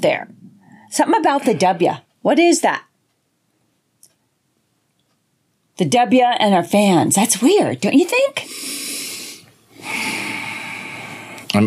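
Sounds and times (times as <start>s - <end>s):
speech: 0.0s - 2.9s, 5.8s - 8.9s
deep breathing exercise: 8.4s - 11.5s.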